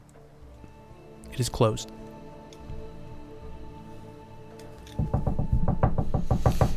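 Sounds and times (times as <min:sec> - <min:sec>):
speech: 0:01.4 - 0:02.0
rapid knocking on a wooden door: 0:05.0 - 0:06.7.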